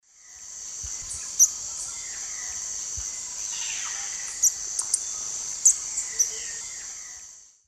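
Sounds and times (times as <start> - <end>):
Tangara callophrys calls in Eastern Lowlands of South America: 0.9 - 7.2.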